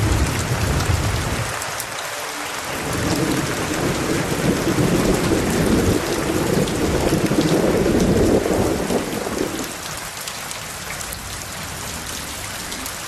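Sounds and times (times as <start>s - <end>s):
rumble of thunder: 0.0s - 1.6s, 2.8s - 9.9s
rain hissing: 0.0s - 13.0s.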